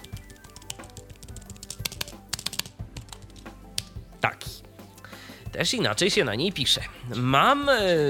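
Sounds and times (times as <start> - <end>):
typing on a Logitech solar computer keyboard: 0.0 - 3.9
speech: 4.2 - 4.6, 5.6 - 8.0.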